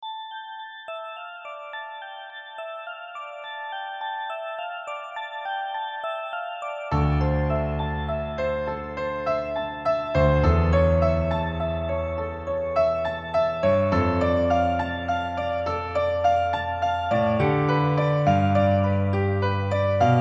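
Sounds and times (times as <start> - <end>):
piano and bell melody: 0.0 - 20.1.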